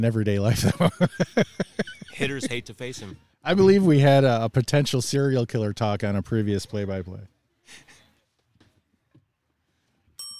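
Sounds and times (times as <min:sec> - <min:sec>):
speech: 0:00.0 - 0:07.8
faint noise: 0:00.0 - 0:10.3
laughter: 0:00.5 - 0:03.1
bell ringing: 0:10.2 - 0:10.3.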